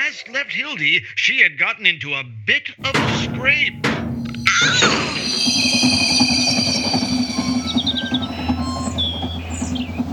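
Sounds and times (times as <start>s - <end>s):
speech: 0.1s - 4.0s, 4.6s - 5.8s
high metallic squeals and whistling tones from the train: 2.8s - 10.1s
train rumbling along railroad tracks: 2.8s - 10.1s.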